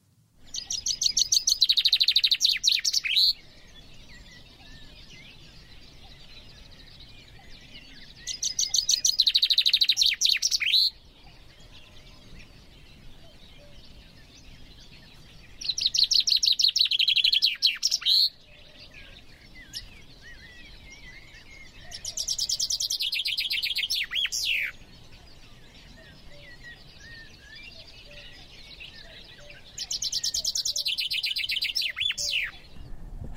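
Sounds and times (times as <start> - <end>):
common chaffinch singing: 0.4 - 33.3.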